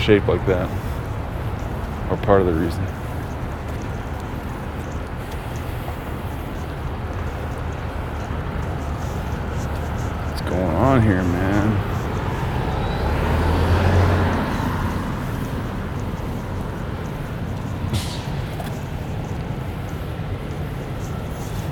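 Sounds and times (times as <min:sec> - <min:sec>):
speech: 0:00.0 - 0:00.9, 0:02.1 - 0:03.0, 0:10.5 - 0:12.0
fire trucks rumbling past: 0:00.0 - 0:21.7
short hiss of air: 0:17.9 - 0:18.6.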